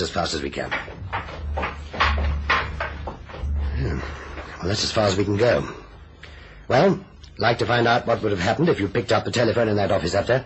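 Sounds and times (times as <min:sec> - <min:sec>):
speech: 0:00.0 - 0:01.0, 0:04.0 - 0:05.8, 0:06.7 - 0:10.4
door opening with rattling scraping clunks: 0:00.7 - 0:04.5.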